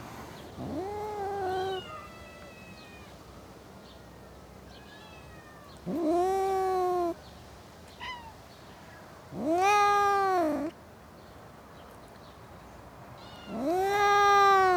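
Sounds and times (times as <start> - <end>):
faint background hiss: 0.0 - 14.7
domestic cat yowling in a suburban garden: 0.6 - 3.2, 4.9 - 7.2, 8.0 - 8.4, 9.3 - 10.8, 13.2 - 14.7.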